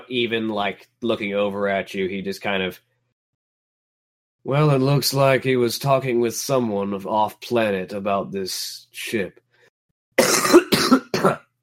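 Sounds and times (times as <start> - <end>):
speech: 0.1 - 2.9, 4.4 - 9.4
harsh coughs: 10.2 - 11.6.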